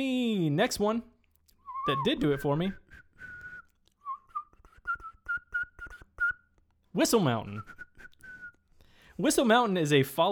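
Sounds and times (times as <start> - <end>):
speech: 0.0 - 1.1, 1.8 - 2.9, 6.9 - 7.8, 9.2 - 10.3
person whistling: 1.6 - 6.7, 7.5 - 8.9.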